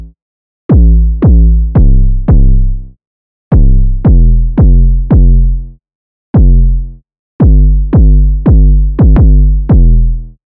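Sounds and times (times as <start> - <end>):
808 drum machine beat: 0.7 - 2.5, 3.5 - 5.4, 6.4 - 6.6, 7.4 - 10.0.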